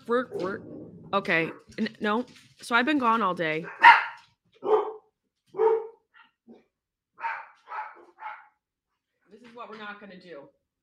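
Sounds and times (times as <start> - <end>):
speech: 0.1 - 4.0, 9.6 - 10.6
dogs barking in short sharp bursts: 3.6 - 8.6.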